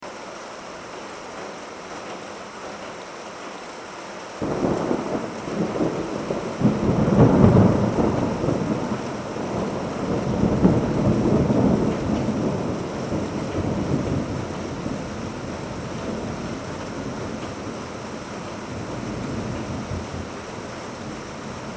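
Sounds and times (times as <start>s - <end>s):
rain on a veranda: 0.0s - 21.7s
thunder: 4.4s - 17.8s.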